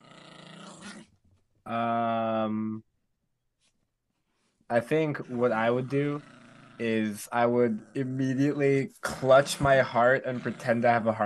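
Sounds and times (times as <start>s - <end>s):
person imitating small yappy dog growling: 0.0s - 1.1s, 5.7s - 11.2s
speech: 1.7s - 2.9s, 4.7s - 11.2s.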